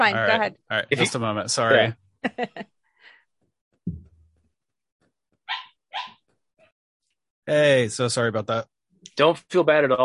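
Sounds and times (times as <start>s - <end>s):
speech: 0.0s - 2.7s, 7.5s - 10.0s
dull thump: 3.8s - 4.2s
dog barking while being let out: 5.5s - 6.2s.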